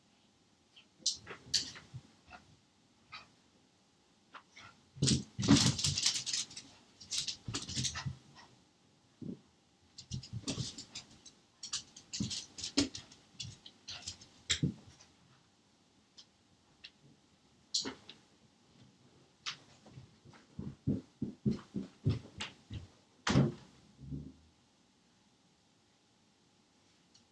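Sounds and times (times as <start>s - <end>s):
dog paws running on partly wooden living room floor: 4.3s - 8.5s, 9.2s - 15.5s, 17.8s - 23.8s.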